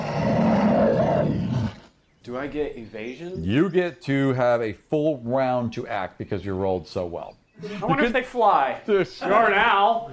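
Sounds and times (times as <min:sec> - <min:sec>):
deep guttural creature roar: 0:00.0 - 0:01.9
speech: 0:02.2 - 0:10.1.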